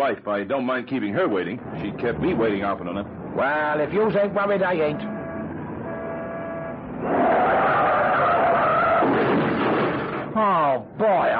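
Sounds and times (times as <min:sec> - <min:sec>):
speech: 0:00.0 - 0:05.2, 0:10.4 - 0:11.3
engine rumbling: 0:00.0 - 0:11.3
car tires screeching in a skid: 0:01.6 - 0:10.1
car crashing into the back of a taxi: 0:07.0 - 0:10.6.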